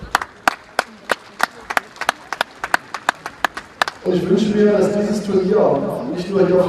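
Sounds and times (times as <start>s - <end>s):
faint murmur of a crowd: 0.0s - 6.6s
rhythmic clapping during a speech at an equestrian tournament in Germany: 0.1s - 4.1s
speech: 4.0s - 6.6s.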